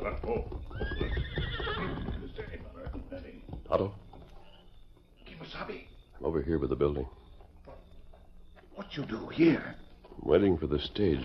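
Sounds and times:
paint horse whinnying: 0:00.0 - 0:03.2
clip-clop of approaching horse hooves: 0:00.0 - 0:11.2
speech: 0:03.8 - 0:04.0, 0:06.5 - 0:07.2, 0:08.9 - 0:11.2.

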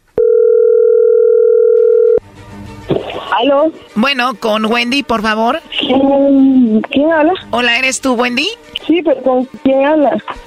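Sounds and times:
phone line noise: 0:00.2 - 0:02.2
telephone dial tone while a call is being placed: 0:00.2 - 0:02.2
speech: 0:03.4 - 0:10.4.

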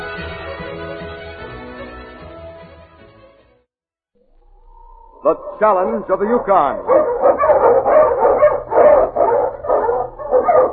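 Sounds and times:
speech: 0:05.2 - 0:07.0
husky sled dog barking: 0:05.4 - 0:10.7.

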